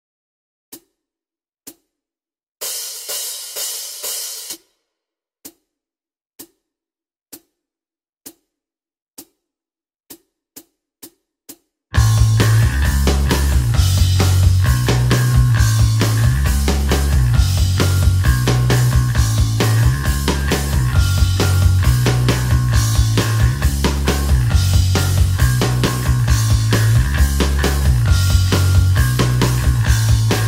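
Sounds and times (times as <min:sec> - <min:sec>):
guitar backing track in original tuning D: 0:12.0 - 0:30.4.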